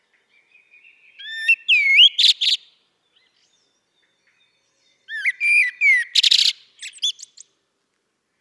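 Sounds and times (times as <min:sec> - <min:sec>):
common blackbird Turdus merula singing: 0:00.0 - 0:07.5.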